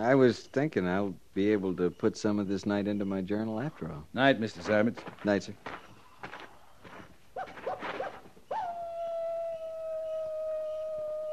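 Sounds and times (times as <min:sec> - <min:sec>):
speech: 0:00.0 - 0:05.8
coyote yipping and howling: 0:07.4 - 0:11.3.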